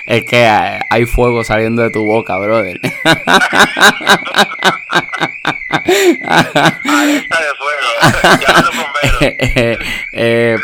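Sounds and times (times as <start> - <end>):
neighbour's alarm with steady wavering high tone: 0.0 - 10.6
speech: 0.0 - 10.6
people laughing in a home living room: 2.8 - 10.0.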